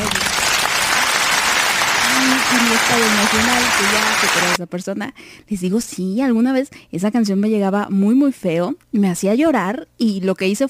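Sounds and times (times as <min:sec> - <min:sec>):
applause sound effect: 0:00.0 - 0:04.6
speech: 0:02.9 - 0:10.6.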